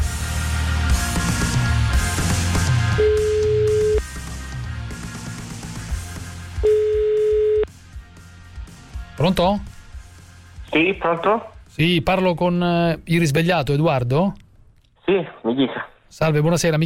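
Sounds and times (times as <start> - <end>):
music: 0.0 - 14.2
Italian telephone ringback tone during a radio call-in: 3.0 - 4.0, 6.6 - 7.7
speech: 9.2 - 9.7, 10.7 - 14.4, 15.1 - 16.8.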